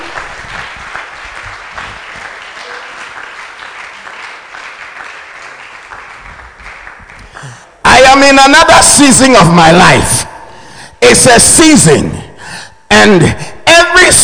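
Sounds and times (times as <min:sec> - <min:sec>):
audience clapping: 0:00.0 - 0:07.8
speech: 0:08.2 - 0:10.3, 0:11.1 - 0:12.2, 0:12.9 - 0:13.4.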